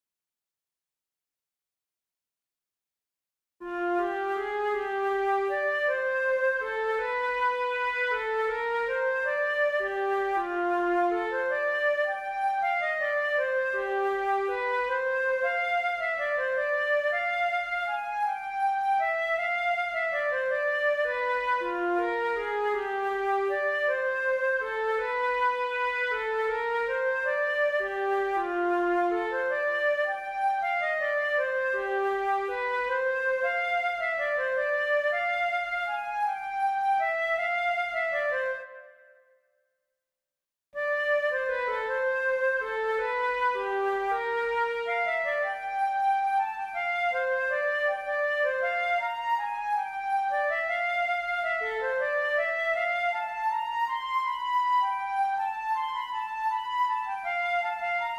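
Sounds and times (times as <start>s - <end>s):
flute music from an action RPG game: 3.7s - 39.2s, 40.8s - 58.1s.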